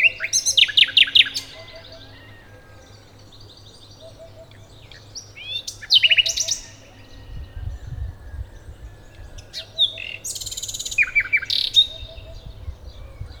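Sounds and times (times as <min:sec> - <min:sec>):
Common nightingale Luscinia megarhynchos singing: 0:00.0 - 0:13.3.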